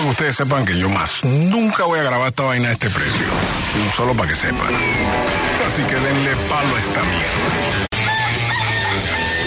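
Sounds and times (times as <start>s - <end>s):
speech: 0.1s - 7.9s
rooster crowing: 7.9s - 9.4s.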